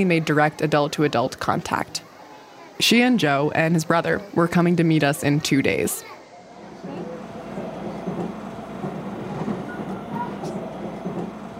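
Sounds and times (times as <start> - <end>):
speech: 0.0 - 2.1, 2.8 - 6.1
train riding on rails heard from inside the carriage: 6.7 - 11.5.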